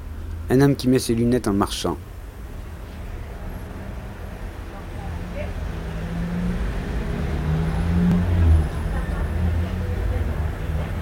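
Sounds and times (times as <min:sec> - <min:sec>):
city traffic rumble on a boulevard: 0:00.0 - 0:10.9
speech: 0:00.5 - 0:02.1
vehicle passing on a city boulevard: 0:02.4 - 0:10.9.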